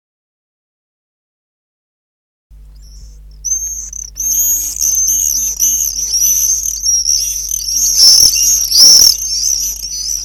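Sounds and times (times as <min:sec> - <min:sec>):
constant low hum: 0:02.5 - 0:10.2
Common swift Apus apus screeching: 0:02.8 - 0:10.2.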